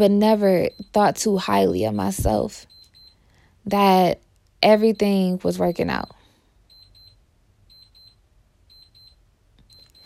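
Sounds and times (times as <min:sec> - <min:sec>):
speech: 0:00.0 - 0:02.8, 0:03.6 - 0:06.2
alarm clock beeping high-pitched tones: 0:00.0 - 0:10.0
low hum: 0:00.0 - 0:10.0.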